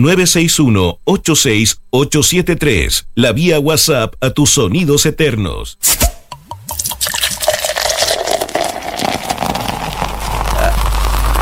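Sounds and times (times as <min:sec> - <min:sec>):
speech: 0:00.0 - 0:06.2
liquid pouring into a glass: 0:06.4 - 0:11.4.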